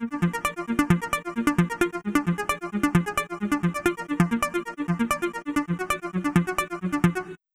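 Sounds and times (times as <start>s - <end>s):
stereo arpeggios with phaser effect: 0.0s - 7.4s.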